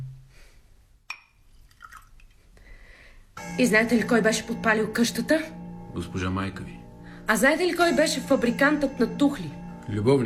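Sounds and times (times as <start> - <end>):
soft clink of glass: 1.1 - 2.1
wine trickling and dripping as poured into a glass: 1.6 - 2.3
speech: 3.6 - 10.2.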